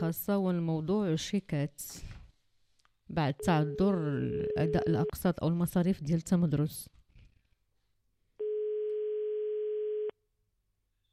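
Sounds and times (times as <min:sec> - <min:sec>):
speech: 0:00.0 - 0:02.2, 0:03.1 - 0:07.0
telephone line tone while calling a mobile phone: 0:03.4 - 0:05.2, 0:08.4 - 0:10.1.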